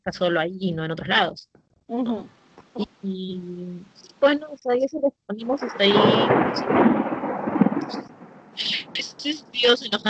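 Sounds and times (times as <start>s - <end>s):
speech: 0.0s - 7.1s, 7.9s - 10.0s
thunder from a storm with no rain: 5.4s - 10.0s.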